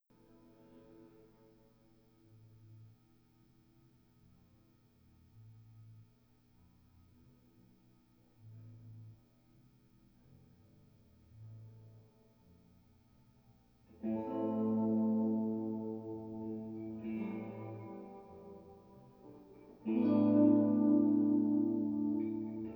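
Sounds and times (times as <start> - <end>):
guitar playing in a room: 14.0 - 22.7.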